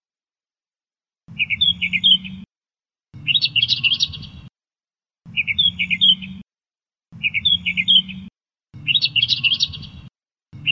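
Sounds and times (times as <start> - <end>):
Australian reed warbler song: 1.3 - 2.5, 3.1 - 4.5, 5.2 - 6.5, 7.1 - 10.6.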